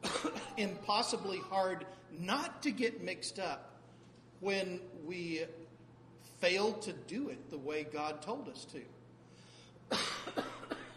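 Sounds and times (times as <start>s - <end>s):
person coughing: 0.0s - 0.8s, 9.9s - 10.9s
speech: 0.6s - 3.7s, 4.4s - 5.6s, 6.3s - 9.0s.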